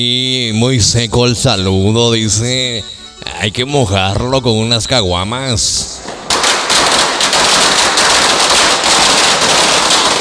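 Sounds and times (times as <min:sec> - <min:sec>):
speech: 0:00.0 - 0:06.2
5-metre string of firecrackers going off: 0:06.0 - 0:10.2.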